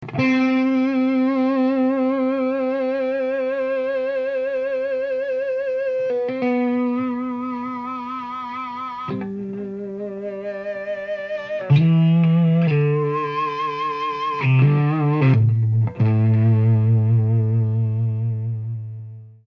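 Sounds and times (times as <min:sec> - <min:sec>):
Plexi 6V6 amplifier feedback: 0:00.0 - 0:19.4.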